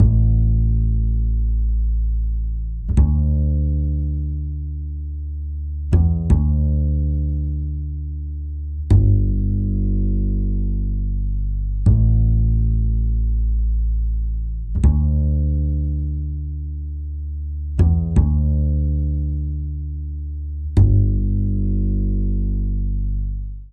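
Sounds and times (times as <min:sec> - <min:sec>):
bass with dynamic EQ: 0:00.0 - 0:23.7.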